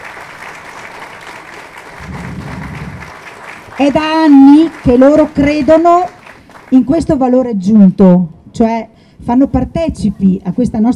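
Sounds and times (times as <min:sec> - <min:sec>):
audience applause for the event organizers: 0:00.0 - 0:07.0
speech: 0:03.8 - 0:10.9.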